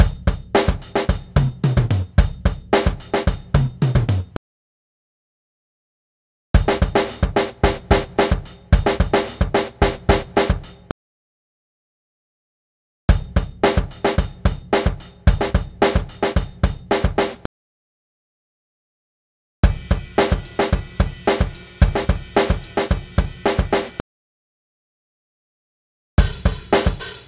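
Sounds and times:
funk drum loop at 110 BPM: 0.0 - 4.4, 6.6 - 10.9, 13.1 - 17.4, 19.6 - 24.0, 26.2 - 27.2.

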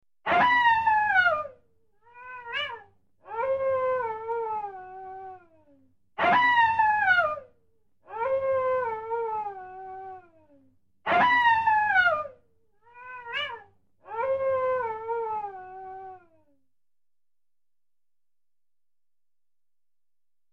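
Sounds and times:
coyote wailing, yelping and howling: 0.3 - 5.4, 6.2 - 7.5, 8.1 - 10.2, 11.1 - 16.4.

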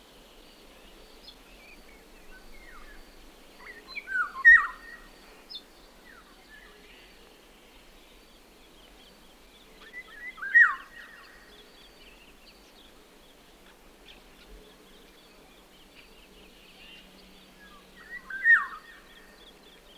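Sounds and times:
Eurasian golden oriole calls: 3.6 - 5.1, 9.8 - 11.8, 16.7 - 19.9.

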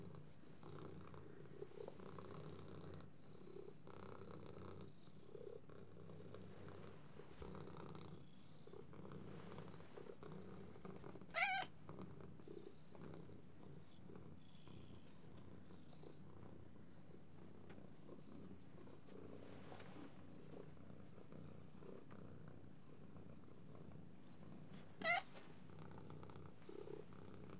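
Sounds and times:
cat purring in a low steady rumble: 0.0 - 27.5
cat giving a short higher mew-like note: 11.4 - 11.7, 25.0 - 25.3.

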